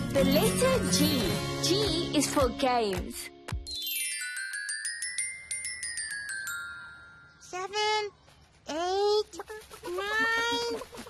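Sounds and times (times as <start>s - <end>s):
speech: 0.2s - 3.4s
light tinkling jingle: 3.7s - 7.9s
chicken clucking: 9.3s - 11.0s.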